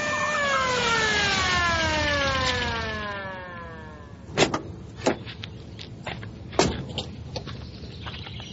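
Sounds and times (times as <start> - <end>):
police car siren winding down: 0.0 - 4.2
thuds and clunks: 6.5 - 7.5.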